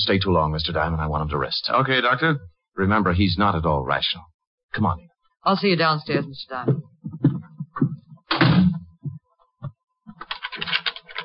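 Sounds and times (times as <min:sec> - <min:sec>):
speech: 0:00.0 - 0:06.8
door thudding shut: 0:08.3 - 0:08.8
door lock clicking and rattling: 0:10.1 - 0:11.2.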